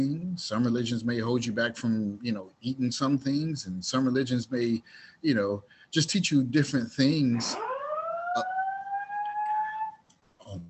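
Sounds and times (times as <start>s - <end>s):
speech: 0.0s - 7.7s, 8.4s - 8.6s
fire alarm wailing: 7.4s - 10.0s.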